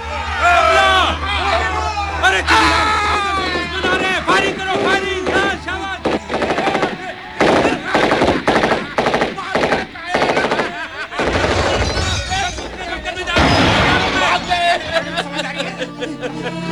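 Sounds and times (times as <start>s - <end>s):
laughter: 0.0s - 16.7s
voices shouting in battle: 0.0s - 16.7s
explosive bangs in battle: 2.5s - 15.5s
shattering impacts: 3.6s - 15.4s
Sten gun firing rapid bursts of bullets in battle: 3.8s - 11.8s.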